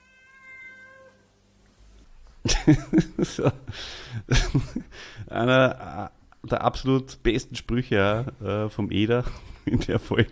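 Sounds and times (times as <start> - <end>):
drawn-out soft cat meow: 0.0 - 1.2
laughter: 2.4 - 4.9, 9.1 - 10.2
speech: 2.6 - 10.2.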